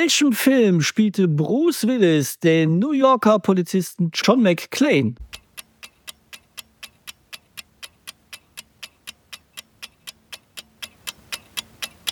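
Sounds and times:
speech: 0.0s - 5.3s
quiz timer clock ticking: 5.2s - 12.0s.

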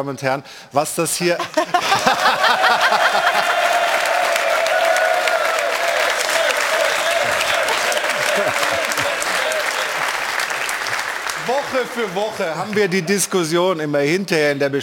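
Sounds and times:
speech: 0.0s - 2.4s, 11.5s - 14.8s
studio audience laughing: 1.4s - 4.4s, 5.8s - 13.6s
studio audience applause in an applause contest: 1.5s - 13.6s
scattered cheers from a studio audience: 2.0s - 13.3s.

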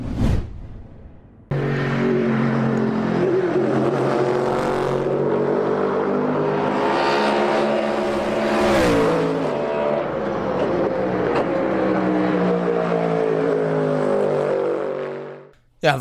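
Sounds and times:
V8 engine of a GT3 pony race car revving: 1.5s - 15.4s.

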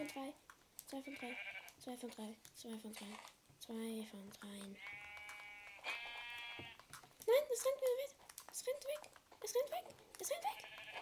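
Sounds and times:
speech: 0.0s - 5.0s, 7.6s - 11.0s
sheep bleating in a video game: 1.0s - 1.8s, 4.8s - 6.8s, 10.4s - 11.0s.

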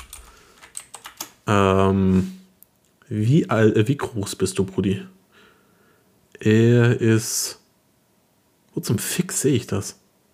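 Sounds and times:
typing on a computer keyboard: 0.0s - 1.4s
speech: 1.5s - 2.4s, 3.1s - 5.2s, 6.4s - 7.6s, 8.8s - 10.0s.

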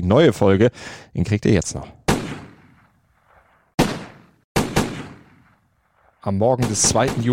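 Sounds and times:
speech: 0.0s - 2.0s, 6.2s - 7.3s
gunshots over a discotheque parking lot on a highway near Medellín, Colombia: 2.1s - 7.3s.

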